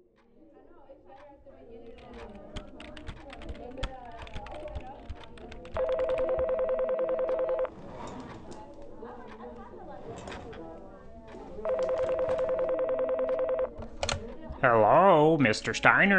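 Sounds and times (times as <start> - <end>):
loud electronic telephone dialing tones: 5.6 - 7.7, 11.6 - 13.9
speech: 14.6 - 16.1.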